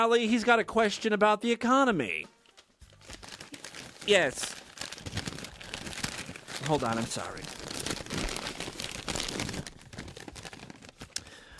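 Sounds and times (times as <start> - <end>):
speech: 0.0 - 2.4, 4.0 - 4.6, 6.6 - 7.9
paper sheets rustling and crinkling: 2.5 - 11.3.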